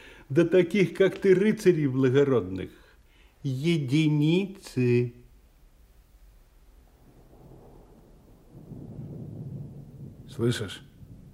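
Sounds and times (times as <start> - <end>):
speech: 0.3 - 2.8, 3.4 - 5.2, 10.4 - 10.9
thunder rumbling from an approaching thunderstorm: 6.2 - 11.3.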